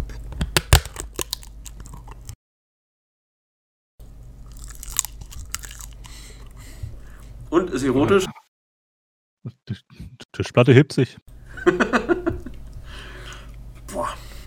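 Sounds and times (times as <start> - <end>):
biting and crunching food that sticks to the roof of the mouth: 0.4 - 2.4, 4.4 - 6.6
speech: 7.5 - 8.3, 10.4 - 11.8
laughter: 11.5 - 12.6.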